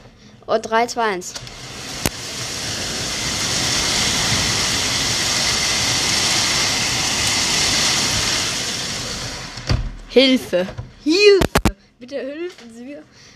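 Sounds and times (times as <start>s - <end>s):
speech: 0.5s - 1.7s, 10.1s - 13.2s
large hailstones pounding down heard through open window: 1.4s - 9.9s.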